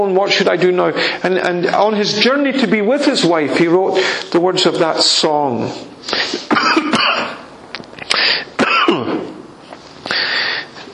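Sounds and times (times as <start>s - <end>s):
speech: 0.0s - 7.2s
harsh raspy throaty coughs: 6.2s - 7.5s, 8.2s - 9.4s.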